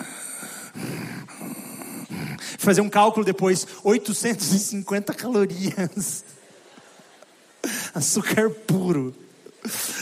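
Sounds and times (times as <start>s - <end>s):
voice imitating heavy, forceful breathing: 0.0s - 2.6s
speech: 2.5s - 6.3s, 8.0s - 9.8s.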